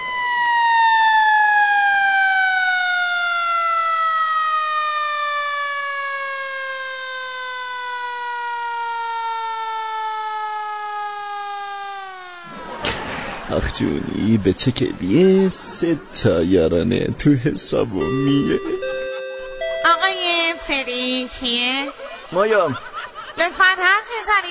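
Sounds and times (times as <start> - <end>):
ambulance siren: 0.0 - 12.4, 17.9 - 23.2
laughter: 12.5 - 20.1, 20.9 - 24.4
speech: 13.5 - 18.9, 20.7 - 24.4.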